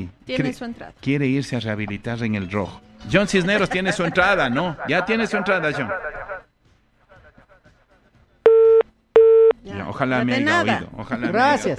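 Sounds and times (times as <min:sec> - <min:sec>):
speech: 0:00.0 - 0:06.1, 0:09.9 - 0:11.7
laughter: 0:03.4 - 0:05.4
steady telephone busy tone after dropped call: 0:08.5 - 0:09.5.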